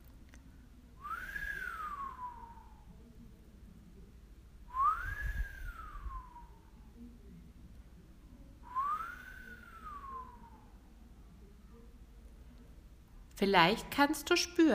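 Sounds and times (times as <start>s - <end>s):
person whistling as a breathing exercise: 1.0s - 2.8s, 4.7s - 6.6s, 8.7s - 10.7s
speech: 13.4s - 14.7s.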